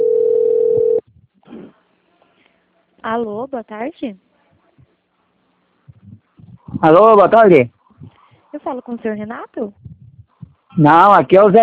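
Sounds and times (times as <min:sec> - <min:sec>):
telephone ringback tone on an outgoing call: 0:00.0 - 0:01.0
speech: 0:03.1 - 0:04.3, 0:06.8 - 0:07.8, 0:08.6 - 0:09.9, 0:10.8 - 0:11.6.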